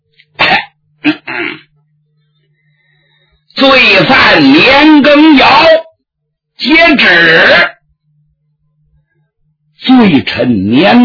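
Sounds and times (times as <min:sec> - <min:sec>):
person clearing throat: 0:00.4 - 0:01.7
person coughing: 0:00.4 - 0:01.7
speech: 0:03.9 - 0:05.8, 0:06.6 - 0:07.7, 0:10.0 - 0:11.0.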